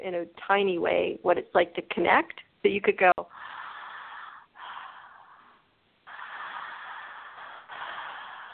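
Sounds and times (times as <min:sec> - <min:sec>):
speech: 0:00.0 - 0:03.6
person breathing in and out: 0:03.2 - 0:08.5.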